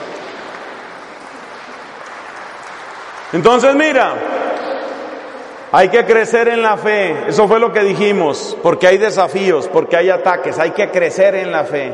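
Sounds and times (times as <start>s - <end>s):
congregation applauding: 0.0s - 6.6s
speech: 3.3s - 4.4s, 5.7s - 11.9s.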